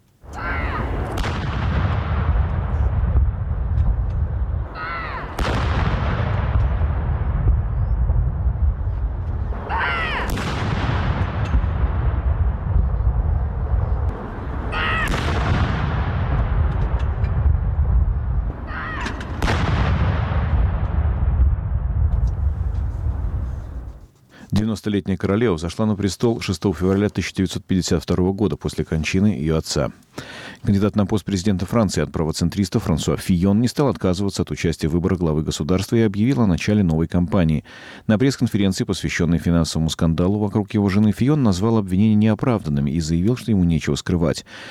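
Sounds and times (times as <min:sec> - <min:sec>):
continuous rumbling outdoor background: 0:00.0 - 0:24.1
booming artillery gun salute: 0:00.2 - 0:01.2
speech: 0:24.8 - 0:44.6.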